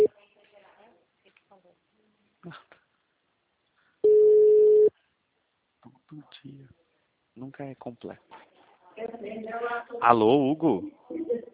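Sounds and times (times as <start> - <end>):
outgoing call telephone ringing tone: 4.0 - 4.9
speech: 7.4 - 8.4, 9.2 - 11.0.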